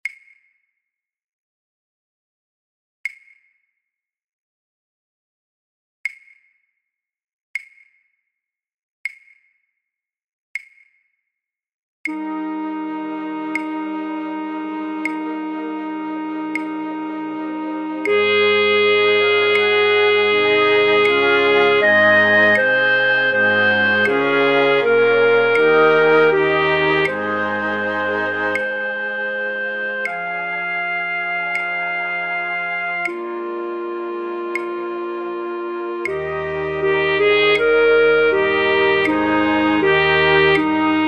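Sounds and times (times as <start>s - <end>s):
alto flute in a flute orchestra: 12.1s - 41.0s.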